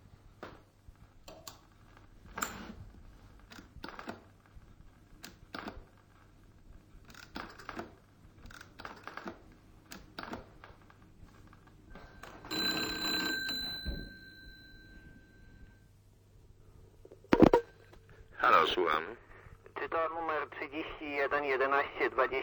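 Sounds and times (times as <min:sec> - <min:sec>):
electronic telephone dialing tones while connecting a ship's radio-medical call: 0:12.0 - 0:15.8
faint radio-line hum: 0:15.6 - 0:22.4.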